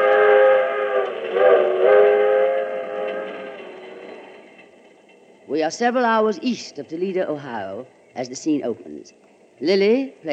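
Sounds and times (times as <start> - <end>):
passenger train whistle wailing: 0.0 - 4.3
passenger train running on rails: 0.0 - 10.3
speech: 5.6 - 10.3.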